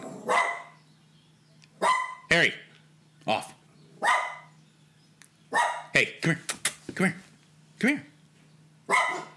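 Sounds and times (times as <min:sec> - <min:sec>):
dog barking: 0:00.2 - 0:00.8, 0:01.8 - 0:02.3, 0:04.0 - 0:04.5, 0:05.5 - 0:06.0, 0:08.9 - 0:09.3
speech: 0:02.3 - 0:04.2, 0:06.0 - 0:07.2, 0:07.8 - 0:08.1.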